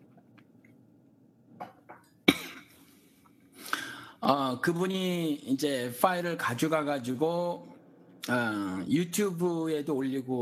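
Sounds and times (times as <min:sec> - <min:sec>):
person coughing: 0:02.2 - 0:02.8
speech: 0:04.2 - 0:10.4.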